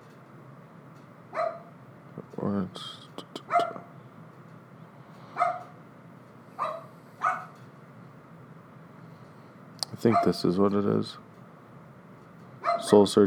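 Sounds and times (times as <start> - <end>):
dogs barking: 1.3 - 1.8, 3.4 - 3.9, 5.3 - 5.8, 6.6 - 7.6, 10.0 - 10.5, 12.6 - 13.0
speech: 2.2 - 3.6, 10.0 - 11.3, 12.9 - 13.2.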